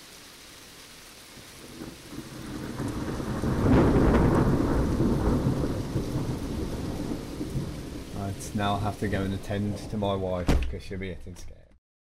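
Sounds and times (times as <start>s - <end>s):
heavy rain: 0.0s - 10.4s
speech: 8.4s - 11.6s.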